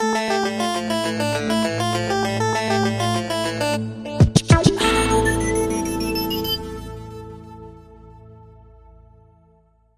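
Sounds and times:
R&B groove: 0.9s - 7.5s.

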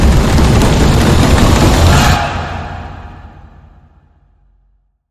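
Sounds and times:
crowd roaring: 0.2s - 4.0s.

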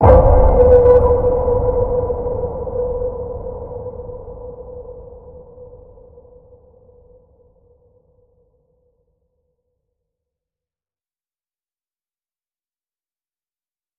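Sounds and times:
deep ping: 0.0s - 5.6s.

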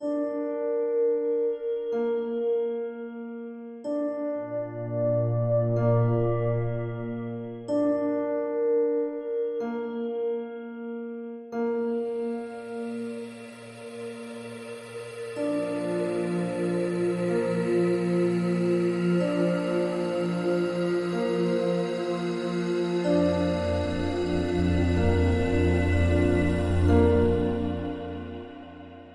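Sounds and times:
piano: 0.0s - 29.1s
drone: 4.4s - 7.7s, 12.2s - 29.1s.

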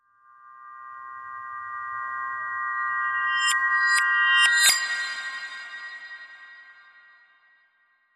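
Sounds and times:
reversed chimes: 1.8s - 5.4s.

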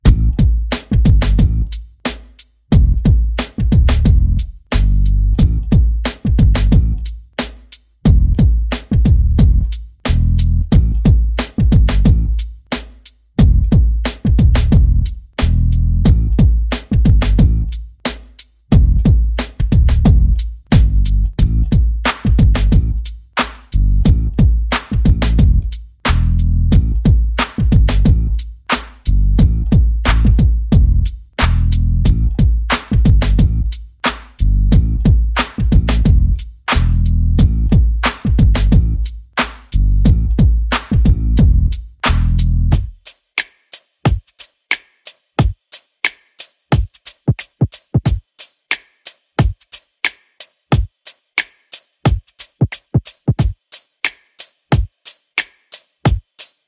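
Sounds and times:
bass: 0.0s - 1.9s, 2.7s - 7.2s, 8.0s - 12.5s, 13.4s - 17.8s, 18.7s - 23.1s, 23.7s - 43.0s
percussion: 0.0s - 56.6s.

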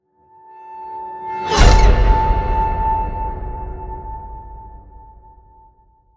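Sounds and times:
broken piano whoosh: 1.4s - 4.9s.

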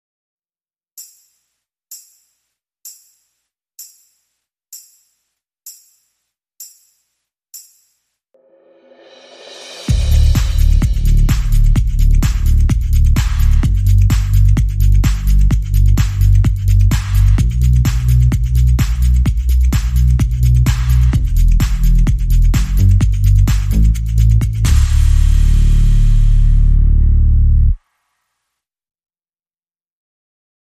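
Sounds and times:
drum and bass music: 9.2s - 27.8s.

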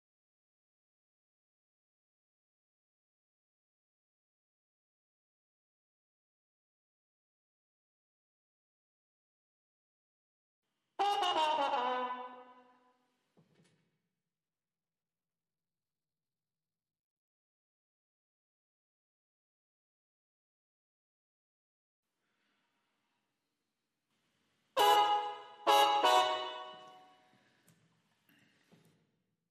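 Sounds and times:
clean trumpets playing: 11.0s - 12.8s, 24.8s - 27.3s.

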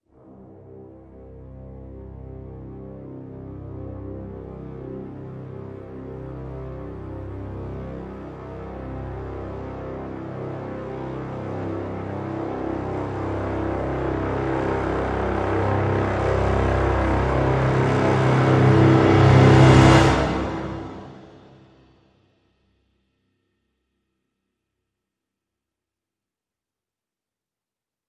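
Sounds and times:
low brass swell in C: 0.3s - 21.9s.

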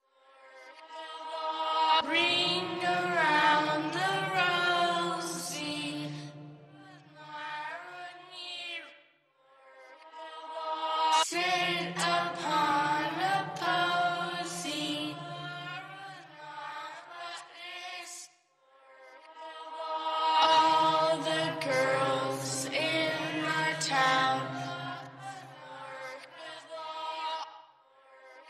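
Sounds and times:
horror-style nursery rhyme vocals: 0.3s - 8.9s, 9.6s - 18.3s, 18.9s - 27.5s.

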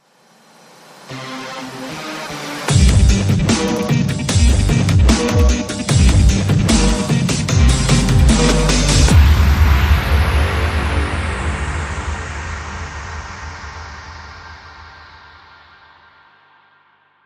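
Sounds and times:
dub bass bumper: 2.7s - 14.4s.

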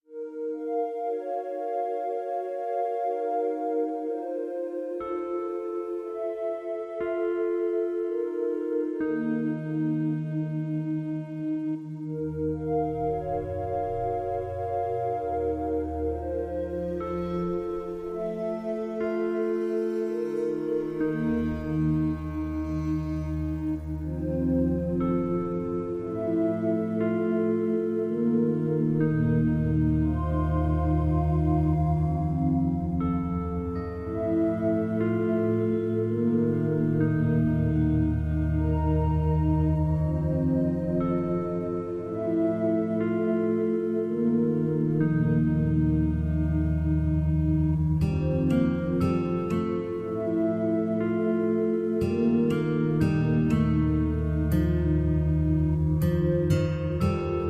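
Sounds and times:
light metaphysical drone: 0.2s - 57.4s.

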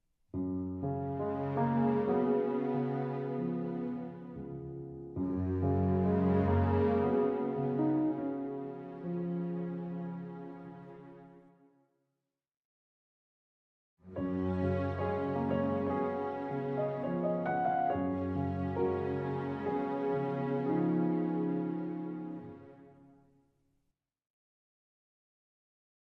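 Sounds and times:
underscore music with strings: 0.6s - 11.6s, 14.1s - 23.1s.

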